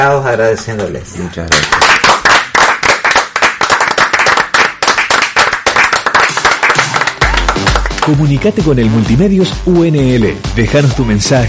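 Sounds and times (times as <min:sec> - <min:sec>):
speech: 0:00.0 - 0:02.1, 0:08.0 - 0:11.4
small group applauding: 0:01.5 - 0:08.4.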